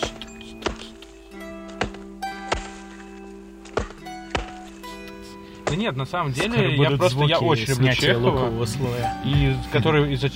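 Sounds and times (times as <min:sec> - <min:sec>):
axes chopping wood: 0:00.0 - 0:06.7
speech: 0:05.7 - 0:10.3.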